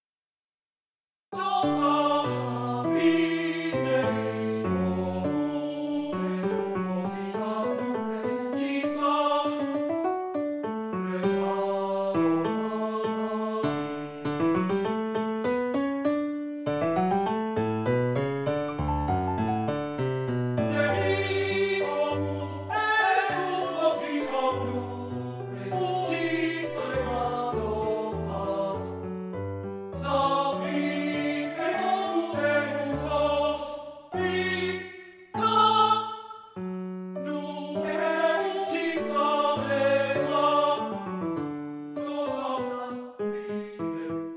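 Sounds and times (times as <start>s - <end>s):
piano accompanying a lied allegretto: 1.3s - 44.3s
person singing a lied allegretto: 1.4s - 9.8s, 11.0s - 13.9s, 20.7s - 29.0s, 30.0s - 36.1s, 37.2s - 40.9s.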